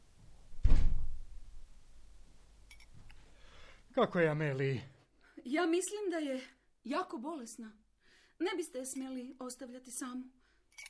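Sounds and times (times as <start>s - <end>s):
door shutting with a heavy thud: 0.6s - 1.2s
speech: 4.0s - 7.8s, 8.4s - 10.8s.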